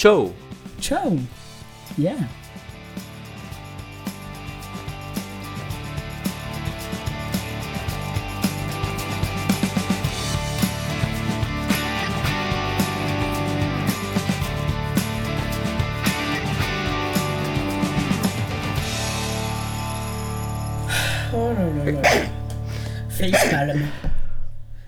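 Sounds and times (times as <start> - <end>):
speech: 0.0 - 2.4
music: 0.0 - 24.8
person sneezing: 0.7 - 2.3, 20.8 - 24.8
voice sounds: 20.8 - 24.1.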